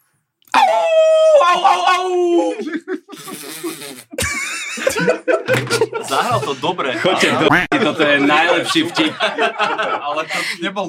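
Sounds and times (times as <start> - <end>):
person imitating a wolf howl: 0.5 - 2.6
laughter: 1.3 - 10.8
speech: 1.6 - 4.2, 4.9 - 10.8.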